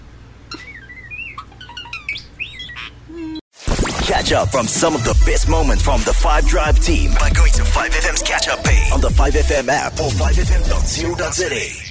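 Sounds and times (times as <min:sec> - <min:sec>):
pet bird chirping and whistling: 0:00.5 - 0:03.4
speech: 0:04.2 - 0:11.8.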